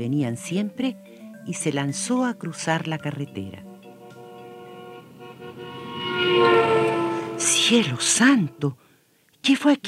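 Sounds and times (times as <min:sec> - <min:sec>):
speech: 0:00.0 - 0:03.7, 0:07.7 - 0:08.8, 0:09.4 - 0:09.8
enormous truck's deep horn honking on a road: 0:03.3 - 0:08.8.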